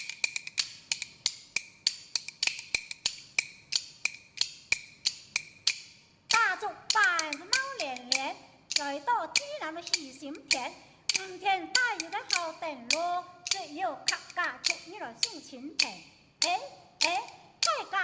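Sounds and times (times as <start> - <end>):
kuaiban bamboo clappers clacking for a live audience: 0.0 - 18.0
person chanting: 6.3 - 18.0
speech: 12.7 - 17.2.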